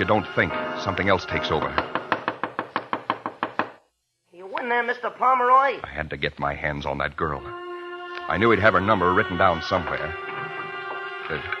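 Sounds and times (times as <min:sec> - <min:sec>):
speech: 0:00.0 - 0:02.0, 0:04.8 - 0:07.6, 0:08.3 - 0:10.3, 0:11.3 - 0:11.5
fist pounding heavily on a door: 0:01.8 - 0:03.8.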